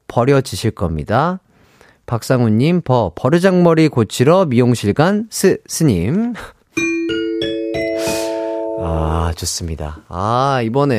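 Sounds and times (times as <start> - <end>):
speech: 0.2 - 1.4, 2.1 - 6.9, 8.9 - 10.9
bright ding-dong-dang chime with bell-like notes: 6.8 - 9.3.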